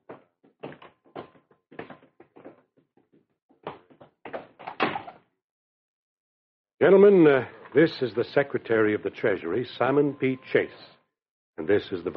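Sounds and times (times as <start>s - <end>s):
door being shut: 4.6s - 5.2s
speech: 6.8s - 11.0s, 11.6s - 12.1s.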